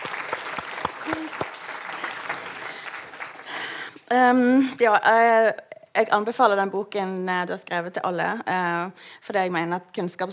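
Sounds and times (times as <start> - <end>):
applause from a small group: 0.0 - 4.0
hands clapping: 0.0 - 4.0
speech: 4.1 - 10.3.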